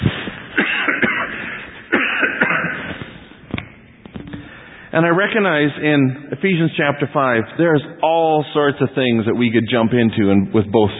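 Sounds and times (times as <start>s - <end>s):
person coughing harshly and raspily: 0.6s - 3.0s
speech: 4.9s - 10.9s.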